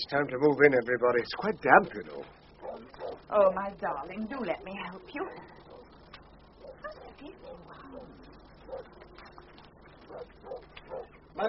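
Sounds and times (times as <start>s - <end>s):
speech: 0.0s - 5.6s, 10.1s - 11.4s
low steady hum: 0.0s - 11.4s
dog howling: 2.1s - 3.3s, 6.6s - 9.4s, 10.1s - 11.1s.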